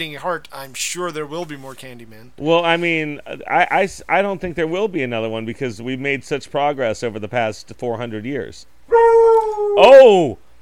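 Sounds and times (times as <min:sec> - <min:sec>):
speech: 0:00.0 - 0:09.0, 0:09.7 - 0:10.4
dog howling: 0:08.9 - 0:10.2.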